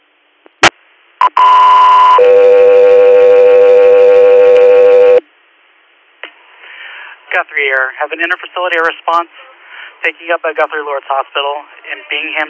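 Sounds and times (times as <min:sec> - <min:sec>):
two-tone dispatch alert over a radio: 0:01.2 - 0:05.2
speech: 0:07.4 - 0:12.4.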